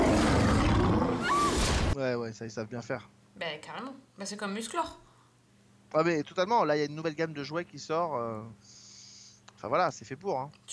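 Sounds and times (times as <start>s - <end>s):
sabre-toothed tiger deep rumbling roar: 0.0s - 1.5s
speech: 2.0s - 5.0s, 5.9s - 8.8s, 9.6s - 10.7s.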